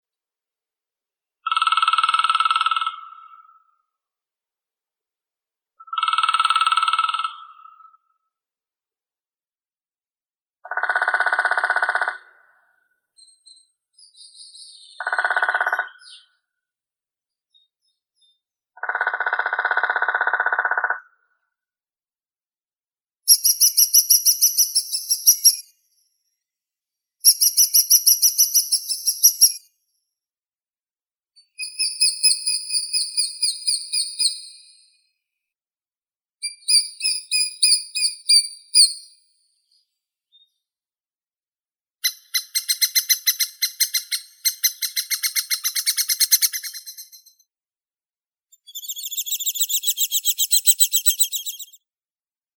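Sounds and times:
lesser spotted woodpecker Dendrocopos minor: 0:01.4 - 0:03.6, 0:05.8 - 0:08.0, 0:10.6 - 0:12.5, 0:13.2 - 0:16.4, 0:18.2 - 0:21.1, 0:23.3 - 0:25.8, 0:27.2 - 0:29.7, 0:31.6 - 0:34.6, 0:36.4 - 0:39.2, 0:42.0 - 0:47.4, 0:48.6 - 0:51.8.

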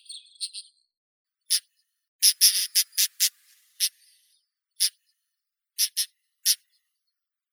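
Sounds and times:
pied wheatear Oenanthe pleschanka calling: 0:01.5 - 0:04.0, 0:05.8 - 0:06.6.

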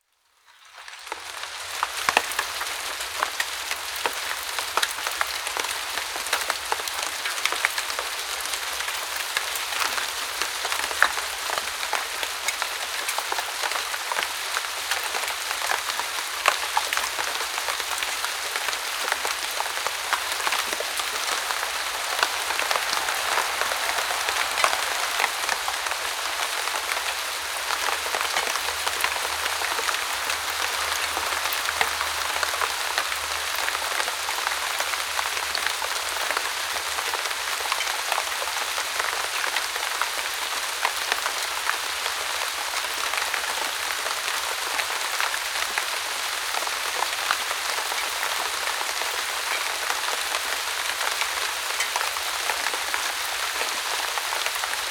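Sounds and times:
rain in a deciduous forest: 0:00.0 - 0:54.8.

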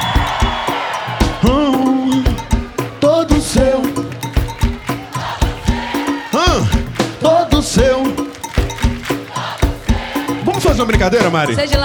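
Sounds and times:
drawn-out whooping yell: 0:00.0 - 0:02.4, 0:05.0 - 0:06.9
crowd shouting and cheering: 0:00.0 - 0:11.8
steady thumping beats: 0:00.0 - 0:11.8
speech: 0:10.8 - 0:11.8.

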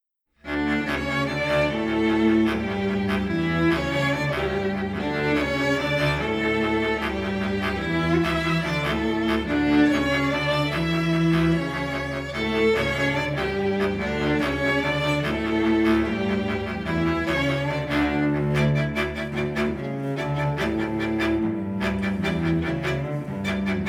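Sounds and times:
string quartet: 0:00.4 - 0:23.8
bass clarinet: 0:00.5 - 0:23.8.

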